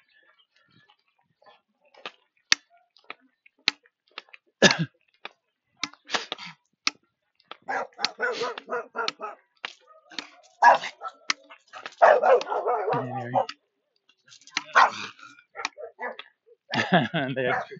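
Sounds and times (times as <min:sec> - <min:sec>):
dog barking and yipping: 0:07.7 - 0:13.6, 0:14.6 - 0:16.2, 0:17.5 - 0:17.7
laughter: 0:12.4 - 0:13.4, 0:16.7 - 0:17.7
speech: 0:16.9 - 0:17.7.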